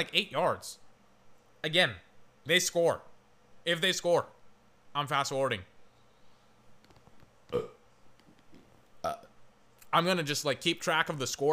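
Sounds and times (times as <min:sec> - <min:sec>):
speech: 0:00.0 - 0:00.8, 0:01.6 - 0:04.4, 0:05.0 - 0:05.7, 0:07.5 - 0:07.8, 0:09.9 - 0:11.5
short throaty burps: 0:07.5 - 0:07.8.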